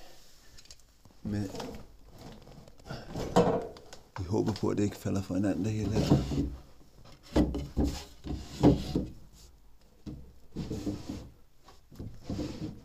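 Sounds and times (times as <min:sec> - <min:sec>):
speech: 0:01.2 - 0:01.9, 0:04.3 - 0:06.6
empty wooden drawers in a house sliding open and shut: 0:01.4 - 0:03.8, 0:05.8 - 0:09.2, 0:10.0 - 0:12.8.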